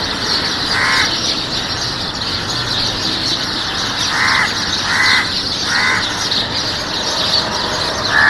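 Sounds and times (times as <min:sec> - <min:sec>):
birds chirping on a green campus with trees in Khar Mumbai: 0:00.0 - 0:08.2
harsh caws: 0:00.7 - 0:01.3, 0:03.5 - 0:08.2.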